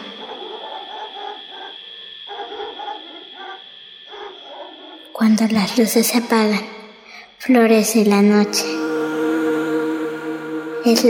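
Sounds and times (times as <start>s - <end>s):
distant dog barking: 0.0s - 5.1s
steady hum: 0.0s - 11.0s
speech: 5.2s - 6.7s, 7.4s - 8.8s, 10.8s - 11.0s.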